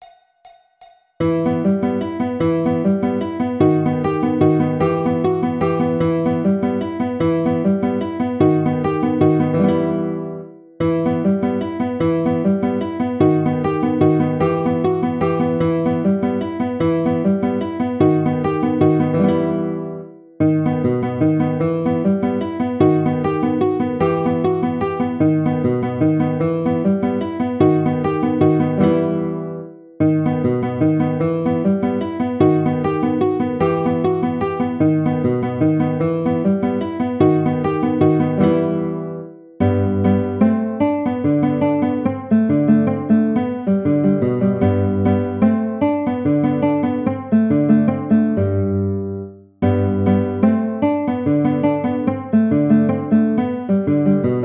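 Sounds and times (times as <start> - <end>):
guitar playing a waltz: 1.2 - 54.4.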